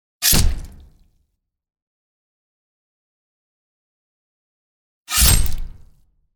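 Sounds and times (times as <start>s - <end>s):
sword hitting a body: 0.2s - 0.9s, 5.1s - 5.9s.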